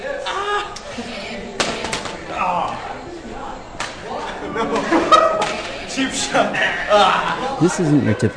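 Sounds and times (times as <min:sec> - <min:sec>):
voices and chuckling: 0:00.0 - 0:08.3
plastic toy swords clashing in a mock duel: 0:01.6 - 0:02.2
speech: 0:06.0 - 0:08.3.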